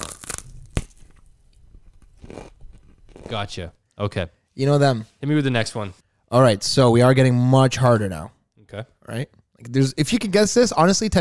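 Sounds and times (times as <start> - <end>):
crunching while chewing broccoli: 0.0 - 3.3
speech: 3.3 - 11.2.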